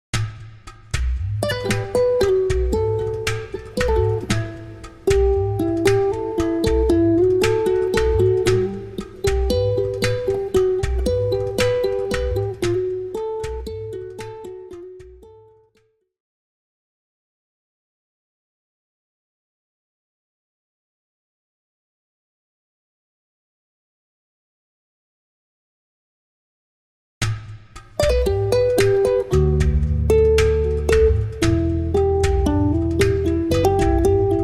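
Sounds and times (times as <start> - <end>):
happy guitar music: 1.4 - 15.6, 28.0 - 34.4.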